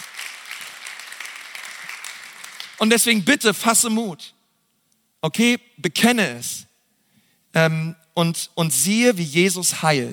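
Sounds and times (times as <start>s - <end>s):
crowd applauding: 0.0s - 3.1s
speech: 2.8s - 4.4s, 5.2s - 6.7s, 7.5s - 10.1s.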